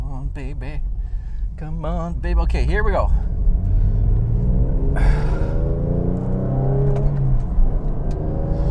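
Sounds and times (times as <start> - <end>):
speech: 0.4 - 0.9, 1.6 - 3.5, 5.0 - 5.3
car engine accelerating hard onto a freeway: 2.0 - 8.6.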